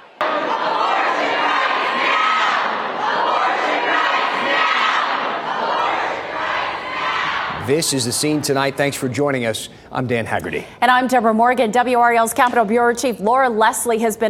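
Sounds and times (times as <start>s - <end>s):
protesters shouting and chanting inside the legislative chamber in Raleigh: 0.2s - 7.7s
speech: 7.7s - 14.2s.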